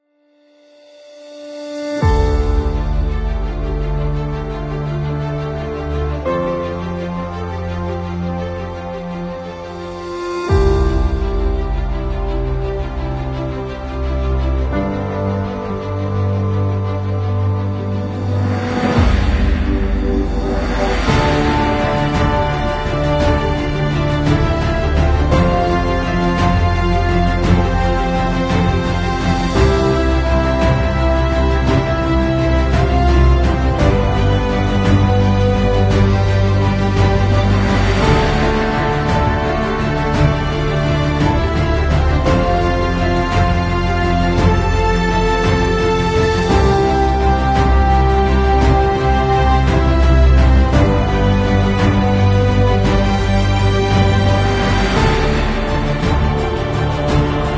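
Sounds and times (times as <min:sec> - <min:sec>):
epic inspirational background music: 0:00.6 - 0:57.5.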